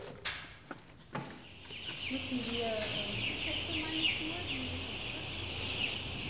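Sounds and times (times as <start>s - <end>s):
chicks peeping in an enclosed poultry barn: 0.0s - 6.2s
low rumble: 2.0s - 6.2s
speech: 2.1s - 4.9s.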